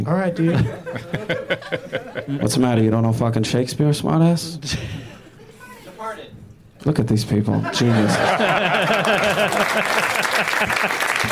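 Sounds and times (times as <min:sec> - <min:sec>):
speech: 0:00.0 - 0:05.0, 0:06.8 - 0:11.3
laughter: 0:00.3 - 0:02.6, 0:07.5 - 0:11.3
crowd applauding: 0:08.1 - 0:11.3.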